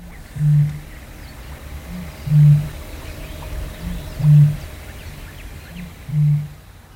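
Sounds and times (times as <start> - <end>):
Eurasian bittern booming call in a marsh: 0.0 - 0.9, 1.8 - 4.8, 5.7 - 6.6
birds chirping in a marsh: 0.0 - 6.9
hissy outdoor background: 0.0 - 6.9.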